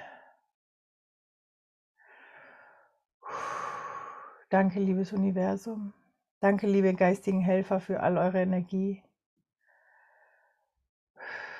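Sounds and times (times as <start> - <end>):
deep slow breathing during a relaxation exercise: 2.0 - 4.4, 9.6 - 11.5
speech: 4.5 - 9.1.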